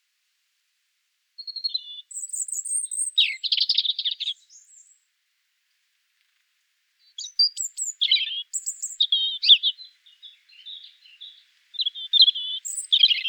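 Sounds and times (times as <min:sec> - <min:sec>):
European Robin singing: 0:01.4 - 0:05.0, 0:07.0 - 0:13.2.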